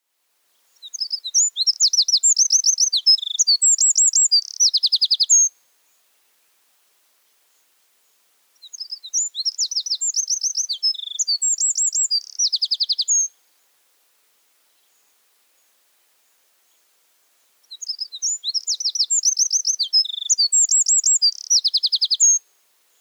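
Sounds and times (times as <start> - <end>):
wren singing: 0.8 - 5.5, 8.6 - 13.3, 17.7 - 22.4.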